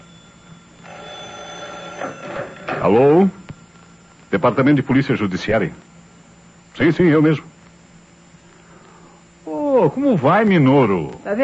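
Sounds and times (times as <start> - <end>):
telephone ringing in a police department office: 0.0 - 5.0
speech: 2.0 - 3.4, 4.3 - 5.9, 6.8 - 7.5, 9.8 - 11.4.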